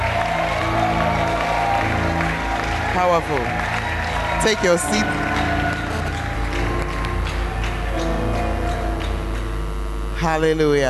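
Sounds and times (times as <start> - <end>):
large audience clapping: 0.0 - 10.4
speech: 3.0 - 3.8, 4.4 - 5.3, 10.2 - 10.8.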